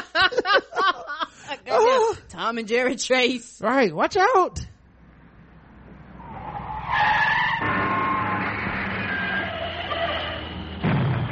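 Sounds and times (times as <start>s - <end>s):
laughter: 0.0s - 2.2s
speech: 2.4s - 4.7s
car tires skidding: 5.8s - 11.3s.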